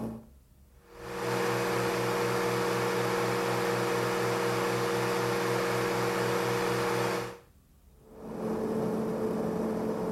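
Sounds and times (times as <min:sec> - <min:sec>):
Lectrofan Micro 2 fan sounds at max volume: 0:00.2 - 0:10.0.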